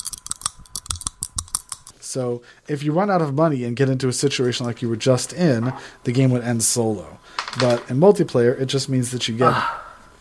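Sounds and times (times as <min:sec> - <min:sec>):
speech: 0:02.1 - 0:09.8
dice clattering and clicking together: 0:07.4 - 0:07.9.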